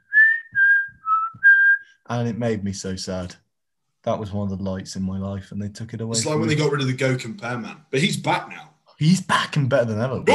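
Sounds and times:
whistled advertising jingle: 0:00.0 - 0:01.9
speech: 0:02.1 - 0:03.4, 0:04.0 - 0:10.3.

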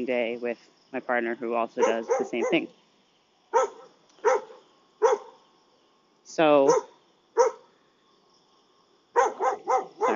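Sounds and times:
speech: 0:00.0 - 0:02.8, 0:03.5 - 0:03.8, 0:06.4 - 0:06.9
dog barking in the early morning in Thailand: 0:01.8 - 0:02.7, 0:03.5 - 0:05.4, 0:06.7 - 0:07.7, 0:09.2 - 0:10.1.

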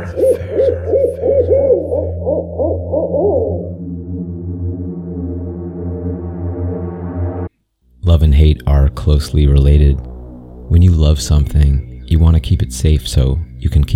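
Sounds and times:
owl hooting: 0:00.0 - 0:05.4
steady low droning tone: 0:00.0 - 0:13.9
speech: 0:08.4 - 0:10.1, 0:10.7 - 0:13.9.

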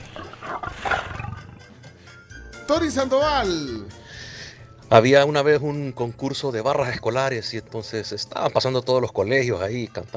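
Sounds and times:
tiger roaring: 0:00.0 - 0:01.8
speech: 0:02.7 - 0:04.0, 0:04.9 - 0:10.1.

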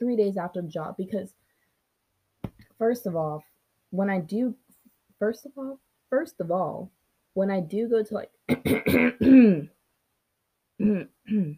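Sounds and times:
speech: 0:00.0 - 0:01.5, 0:02.8 - 0:04.6, 0:05.2 - 0:09.8, 0:10.8 - 0:11.5
person with mucus in the throat clearing throat: 0:08.5 - 0:09.7, 0:10.8 - 0:11.5.

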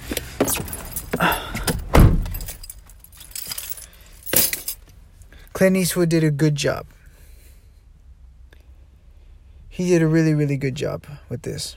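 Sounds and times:
keys jangling and clinking: 0:00.4 - 0:04.9
car door thud: 0:01.6 - 0:02.5
speech: 0:05.6 - 0:07.0, 0:09.8 - 0:11.7.

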